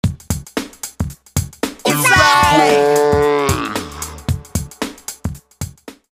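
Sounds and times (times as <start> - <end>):
backing vocals: 1.9 - 4.7.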